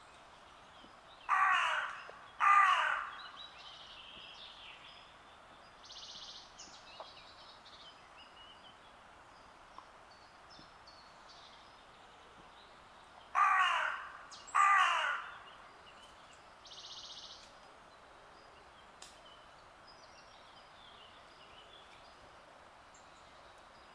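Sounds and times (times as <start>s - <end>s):
Carrion crow Corvus corone giving harsh hoarse caws: 1.3s - 3.2s, 13.4s - 15.4s.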